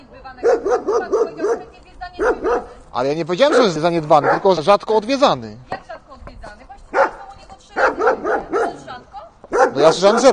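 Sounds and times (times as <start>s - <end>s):
dog barking: 0.4s - 2.8s, 3.5s - 4.5s, 6.9s - 8.9s, 9.5s - 10.3s
speech: 3.0s - 5.7s, 9.8s - 10.3s.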